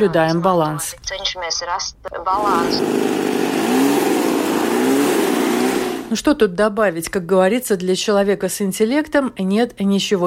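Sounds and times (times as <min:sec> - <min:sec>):
speech: 0:00.0 - 0:03.4, 0:06.1 - 0:10.2
motorized leaf blower engine clearing autumn leaves: 0:02.4 - 0:06.1.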